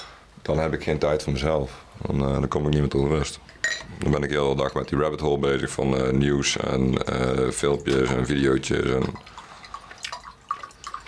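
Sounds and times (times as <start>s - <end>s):
soft hiss: 0.0s - 11.0s
water dripping while making coffee: 0.0s - 11.0s
speech: 0.5s - 9.4s.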